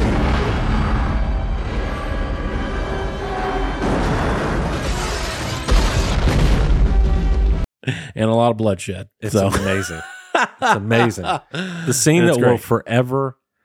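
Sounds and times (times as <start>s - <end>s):
explosion booms: 0.0s - 2.6s, 3.8s - 7.7s
speech: 7.9s - 13.4s
laughter: 9.3s - 12.7s.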